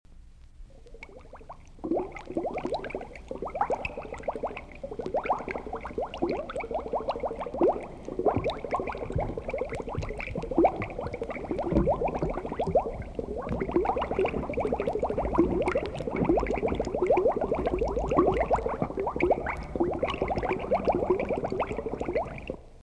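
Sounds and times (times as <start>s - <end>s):
bubbles: 0.8s - 22.8s.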